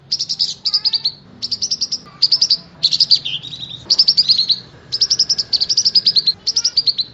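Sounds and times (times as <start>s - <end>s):
lovebird singing: 0.0s - 7.1s.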